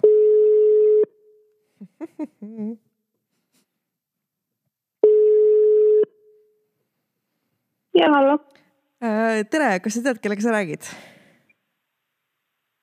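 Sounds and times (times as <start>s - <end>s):
phone ringback tone as a call is placed: 0.0s - 1.1s, 5.0s - 6.2s
speech: 8.0s - 11.1s.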